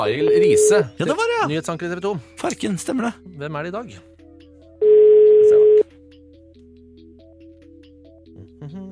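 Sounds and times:
single steady electronic ringback tone of a phone call: 0.0s - 0.9s, 4.8s - 5.8s
speech: 0.0s - 4.1s.

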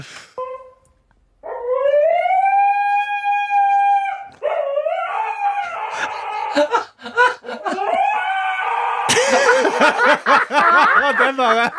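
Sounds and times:
relaxed dog howl-like moaning while lying on stairs: 1.4s - 8.8s
laughter: 5.9s - 8.0s, 9.1s - 11.7s
speech: 9.8s - 11.7s.

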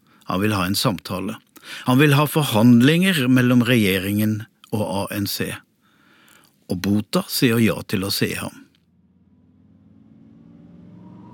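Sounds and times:
speech: 0.3s - 5.7s, 6.7s - 8.6s
car engine humming and revving as the vehicle drives: 8.9s - 11.3s.

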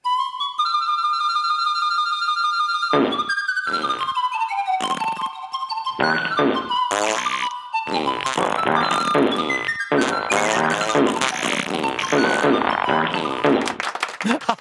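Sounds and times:
breathy pan flute melody: 0.0s - 13.7s
loud sputtering fart noises played like a pan flute melody: 2.9s - 4.2s, 4.8s - 5.4s, 6.0s - 13.8s
laughter: 13.6s - 14.5s.

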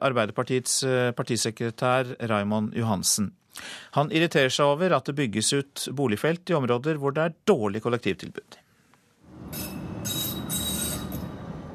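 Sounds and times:
speech: 0.0s - 8.6s
tram rumbling along its tracks: 9.3s - 11.7s
high-pitched metallic squealing of tram wheels on the rails: 9.4s - 11.7s.

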